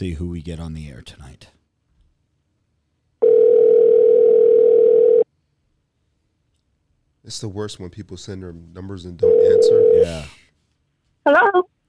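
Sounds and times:
speech: 0.0 - 1.6, 7.2 - 10.4, 11.2 - 11.7
ringback tone of an outgoing telephone call: 3.2 - 5.2, 9.2 - 10.2.

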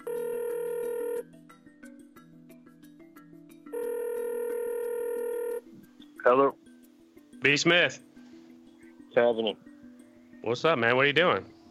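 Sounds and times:
ringback tone of an outgoing phone call: 0.0 - 1.4, 3.7 - 5.7
speech: 6.3 - 6.6, 7.4 - 8.1, 9.2 - 9.7, 10.4 - 11.6.

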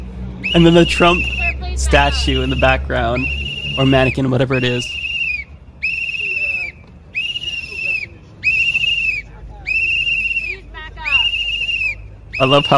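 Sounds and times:
low murmur of crowd noise: 0.0 - 12.7
man blowing a shrill whistle: 0.4 - 12.7
speech: 0.5 - 5.0, 12.4 - 12.7.

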